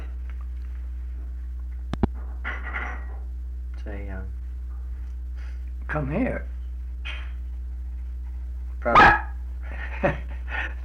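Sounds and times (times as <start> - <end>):
low hum: 0.0 - 10.8
speech: 5.9 - 6.5, 8.8 - 9.2, 10.0 - 10.3
dog barking: 8.9 - 9.4.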